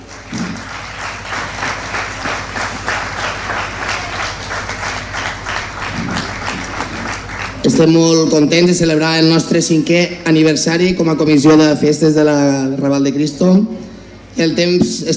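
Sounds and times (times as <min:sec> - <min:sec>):
crowd applauding at a festival: 0:00.0 - 0:08.2
faint low hum: 0:00.0 - 0:15.1
speech: 0:07.7 - 0:15.1.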